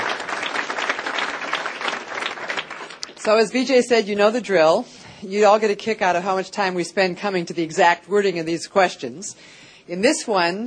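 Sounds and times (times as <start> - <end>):
audience applause for a panel discussion: 0.0 - 3.2
speech: 3.2 - 10.6.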